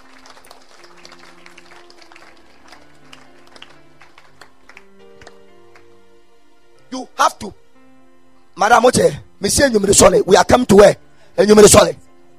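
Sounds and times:
audience clapping rhythmically: 0:00.0 - 0:06.0
speech: 0:07.0 - 0:07.6, 0:08.6 - 0:12.0.

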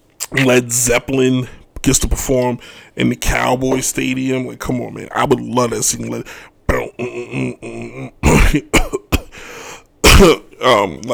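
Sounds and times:
speech: 0:00.3 - 0:09.0, 0:10.2 - 0:11.1
person coughing: 0:06.7 - 0:10.8
person clearing throat with rasping voiced sounds: 0:06.7 - 0:11.0.

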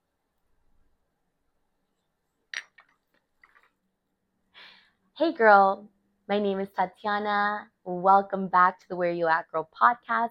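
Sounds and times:
glasses clinking in a toast: 0:02.6 - 0:02.8
speech: 0:05.2 - 0:10.2.

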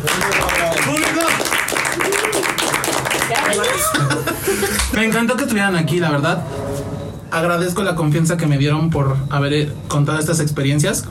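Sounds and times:
crowd applauding: 0:00.0 - 0:05.0
people laughing in a crowd: 0:01.8 - 0:05.5
speech: 0:05.0 - 0:06.6, 0:07.3 - 0:11.0.

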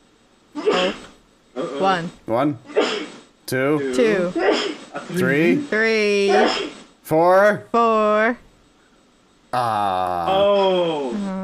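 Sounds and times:
person sneezing: 0:00.6 - 0:01.9, 0:02.7 - 0:03.2, 0:04.2 - 0:05.3, 0:06.3 - 0:06.9
speech: 0:00.8 - 0:01.0, 0:01.8 - 0:02.7, 0:03.5 - 0:08.4, 0:09.5 - 0:11.0.

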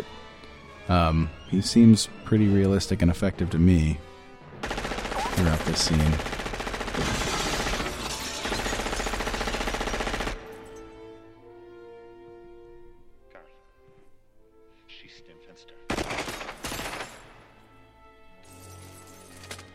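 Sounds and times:
speech: 0:00.9 - 0:04.1, 0:05.4 - 0:06.4, 0:07.0 - 0:07.3
gunfire in a film scene: 0:04.6 - 0:10.6, 0:15.9 - 0:17.6
glass shattering from being shot in a film scene: 0:07.0 - 0:09.2, 0:18.5 - 0:19.7.

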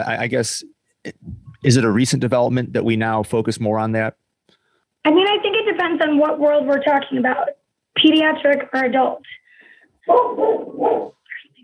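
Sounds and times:
speech: 0:00.0 - 0:04.2, 0:05.0 - 0:09.4, 0:10.1 - 0:11.2
dog barking: 0:10.1 - 0:11.2.

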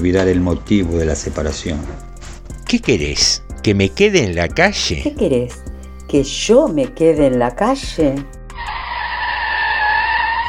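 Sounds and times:
speech: 0:00.0 - 0:02.1, 0:02.7 - 0:08.4
car braking hard with tires screeching in the street: 0:08.6 - 0:10.4.

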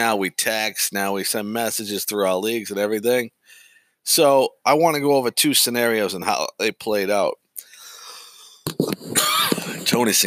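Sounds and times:
speech: 0:00.0 - 0:07.4, 0:09.8 - 0:10.2
dry cough: 0:09.1 - 0:09.9.

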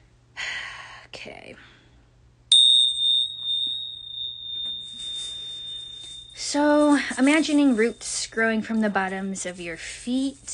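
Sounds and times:
speech: 0:01.2 - 0:01.8, 0:06.4 - 0:10.5
hand bell struck with a clear high tone: 0:02.5 - 0:08.1
soft rustling or shaking of bells: 0:02.5 - 0:09.8.

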